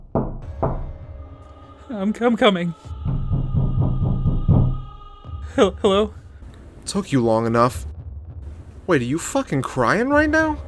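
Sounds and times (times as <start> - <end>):
heavy hard knocks on a door: 0.0 - 0.9, 3.1 - 4.9
speech: 1.9 - 3.0, 5.6 - 6.2, 6.9 - 7.9, 8.9 - 10.6.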